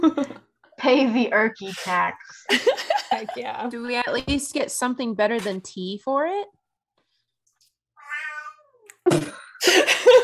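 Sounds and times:
speech: 0.0 - 6.6, 9.1 - 10.2
laughter: 2.5 - 3.8, 9.1 - 10.2
cat meowing: 8.0 - 8.9.

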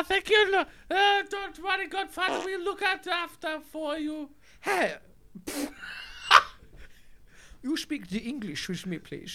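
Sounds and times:
speech: 0.0 - 6.5, 7.6 - 9.3
faint breathing: 0.7 - 0.9, 4.4 - 4.6, 5.7 - 7.6
person sneezing: 5.4 - 6.6
laughter: 5.4 - 6.9.

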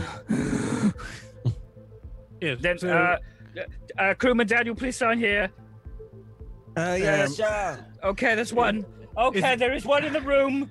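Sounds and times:
heavy breathing: 0.0 - 1.8
speech: 2.4 - 5.6, 6.8 - 10.6.

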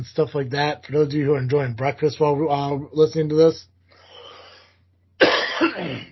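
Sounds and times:
speech: 0.0 - 3.7
dry rough cough from an irritated throat: 5.2 - 6.1
person clearing an irritated throat: 5.2 - 6.1.

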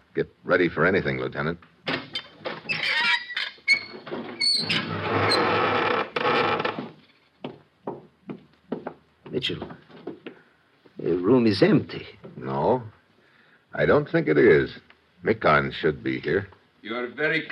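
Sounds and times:
speech: 0.2 - 1.7, 9.4 - 9.8, 11.0 - 13.0, 13.7 - 17.5
secret wooden door creaking and scraping open: 1.8 - 7.1.

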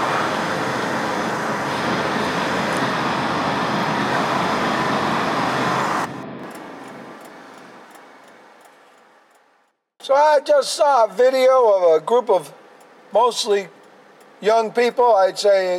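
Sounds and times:
road traffic roar of passing vehicles: 0.0 - 9.6
speech: 10.1 - 13.8, 14.4 - 15.7.

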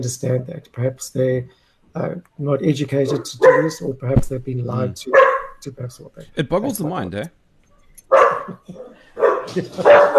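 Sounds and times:
speech: 0.0 - 7.4, 8.0 - 10.1
bull terrier barking: 3.1 - 3.9, 5.1 - 5.6, 8.1 - 8.6, 9.2 - 10.1.

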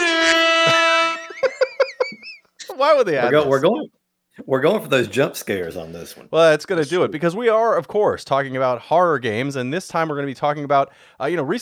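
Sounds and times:
air horn blast from soundboard: 0.0 - 1.4
short bursts of laughter: 0.0 - 2.5
speech: 2.8 - 11.6.

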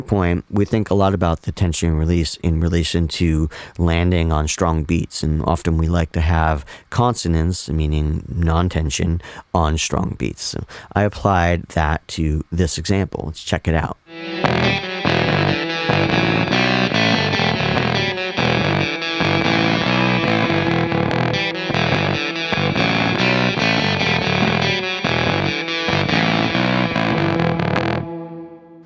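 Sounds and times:
speech: 0.0 - 16.2
electric guitar through fuzz pedal playing a distorted riff: 14.1 - 28.8.

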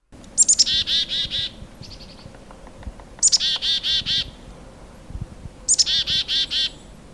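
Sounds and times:
black-capped chickadee chick-a-dee-dee-dee call: 0.2 - 4.5, 5.7 - 7.0.

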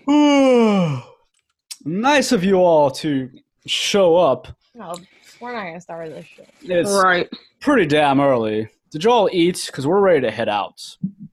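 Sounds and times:
drawn-out yawn voiced by a person: 0.0 - 1.2
speech: 2.0 - 11.3.

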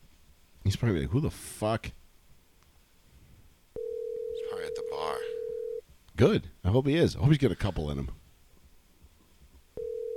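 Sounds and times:
quiet hum: 0.0 - 10.1
speech: 0.7 - 2.0, 6.2 - 8.2
electronic telephone ringing tone of an outgoing call: 3.8 - 5.8, 9.8 - 10.1.

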